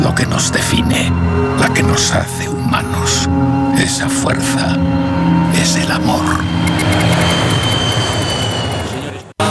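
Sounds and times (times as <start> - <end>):
speech: 0.1 - 7.3
airplane coming in to land with broad jet roar: 3.7 - 9.4
rhythmic sound: 4.1 - 9.3.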